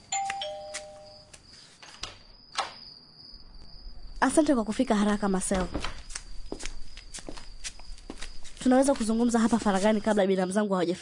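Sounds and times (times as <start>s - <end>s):
two-note ding-dong front-door doorbell chime in a house: 0.1s - 1.3s
speech: 4.2s - 6.0s, 8.7s - 10.9s.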